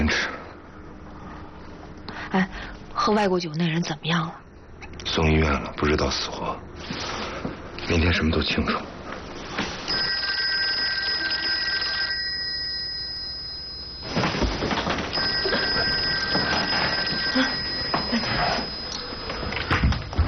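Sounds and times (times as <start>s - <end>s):
faint hum: 0.0s - 20.2s
speech: 2.3s - 4.4s, 5.0s - 7.1s, 7.9s - 8.9s
telephone ringing: 9.8s - 20.1s.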